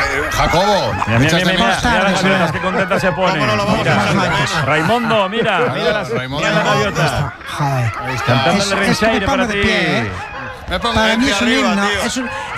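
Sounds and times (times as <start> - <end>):
laughter: 0.0 - 12.5
seagull calls: 0.0 - 12.5
speech: 0.4 - 12.5.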